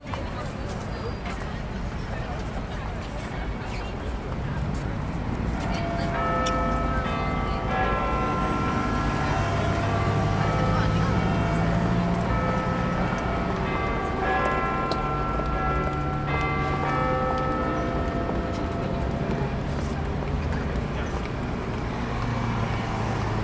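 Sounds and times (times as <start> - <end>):
people in London: 0.0 - 23.4
traffic in London: 0.0 - 23.4
Big Ben clock bell chiming one o'clock in London: 5.6 - 19.3.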